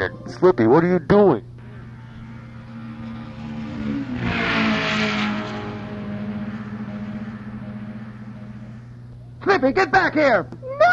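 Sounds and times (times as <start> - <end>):
speech: 0.0 - 1.5, 9.6 - 10.6
car engine revving as the vehicle pulls away: 1.6 - 9.2.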